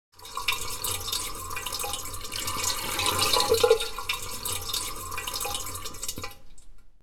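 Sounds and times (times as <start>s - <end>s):
toilet water refilling after flush: 0.1s - 6.8s.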